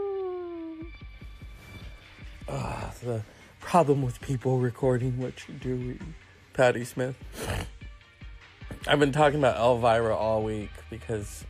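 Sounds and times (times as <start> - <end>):
person imitating a dog howling and barking: 0.0 - 0.9
speech: 2.5 - 7.7, 8.8 - 11.4.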